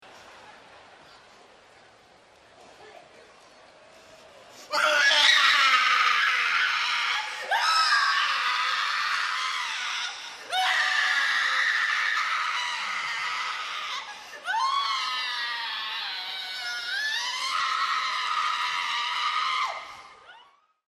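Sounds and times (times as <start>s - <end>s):
person vomit screaming: 4.7s - 20.1s.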